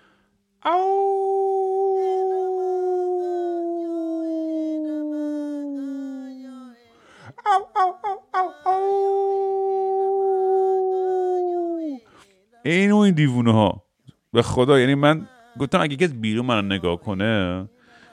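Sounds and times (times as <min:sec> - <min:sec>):
speech: 0:00.6 - 0:00.9, 0:12.7 - 0:17.8
person in bed imitating a wolf howl: 0:00.6 - 0:12.1.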